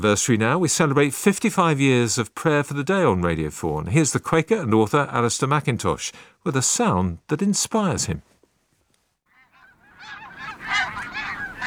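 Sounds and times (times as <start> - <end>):
speech: 0.0 - 8.3
wild geese calling as they fly in high formation: 9.3 - 11.6.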